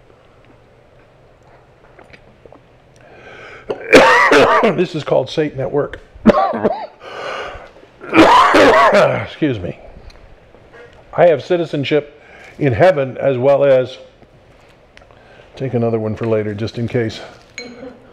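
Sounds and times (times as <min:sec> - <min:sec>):
person coughing: 0:03.7 - 0:04.9, 0:06.2 - 0:07.0, 0:08.0 - 0:09.3
speech: 0:04.5 - 0:06.7, 0:08.7 - 0:09.8, 0:11.2 - 0:14.1, 0:15.6 - 0:17.4.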